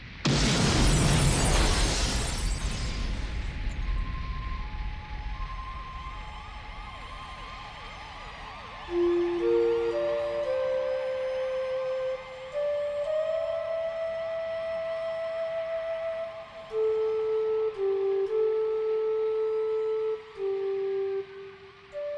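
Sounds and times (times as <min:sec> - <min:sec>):
planted bomb blowing up a mansion: 0:00.0 - 0:06.4
wailing siren-like tones: 0:03.4 - 0:22.1.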